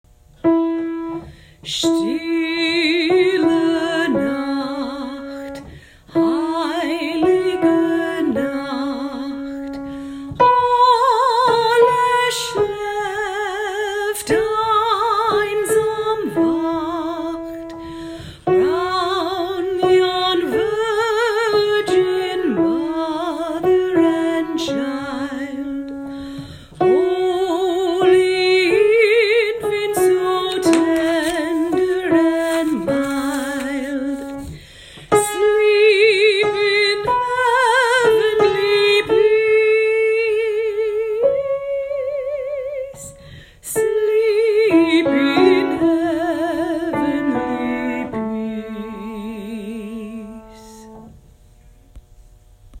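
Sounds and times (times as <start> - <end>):
soprano singing a carol: 0.5 - 34.5, 35.1 - 51.1.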